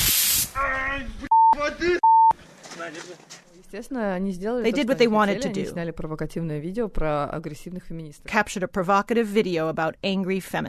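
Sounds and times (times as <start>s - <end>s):
harsh hiss of pepper spray: 0.0s - 0.6s
speech: 1.0s - 2.1s, 2.8s - 10.6s
loud censor beeps: 1.3s - 2.3s.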